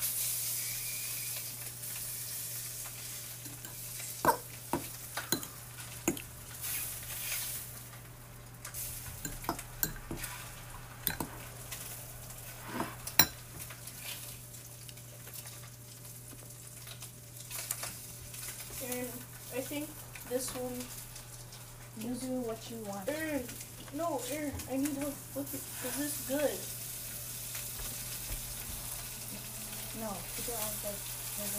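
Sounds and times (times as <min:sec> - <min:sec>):
food sizzling as it cooks in a pan: 0:00.0 - 0:31.5
tongs and utensils clicking and tapping: 0:03.4 - 0:06.3, 0:08.6 - 0:10.4, 0:11.0 - 0:12.0, 0:13.0 - 0:14.2
speech: 0:22.6 - 0:26.7, 0:30.2 - 0:31.5.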